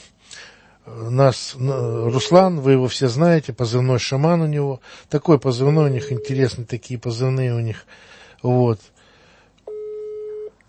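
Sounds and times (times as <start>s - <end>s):
speech: 0.9s - 9.0s
electronic telephone tone during a call not going through: 2.2s - 2.5s, 6.0s - 6.4s, 9.7s - 10.5s.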